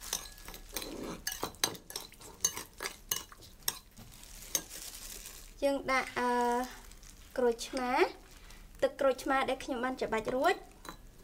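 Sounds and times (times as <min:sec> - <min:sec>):
spoon stirring ingredients in a container: 0:00.0 - 0:04.9
speech: 0:05.6 - 0:06.8, 0:07.4 - 0:08.2, 0:08.8 - 0:10.7.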